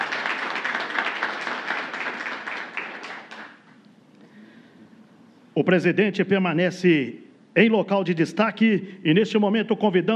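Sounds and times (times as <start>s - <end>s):
audience applauding: 0.0s - 3.6s
speech: 5.6s - 10.1s.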